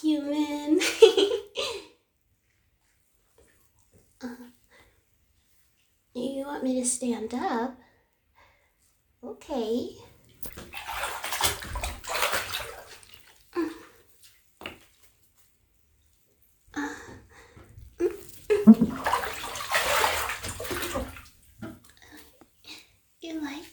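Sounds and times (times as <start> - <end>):
speech: 0.0 - 1.4, 6.6 - 7.8, 9.4 - 10.0
water sloshing and splashing in a bathtub: 2.4 - 7.4, 9.6 - 23.7
water dripping in a bathtub: 10.2 - 13.4, 18.0 - 22.1.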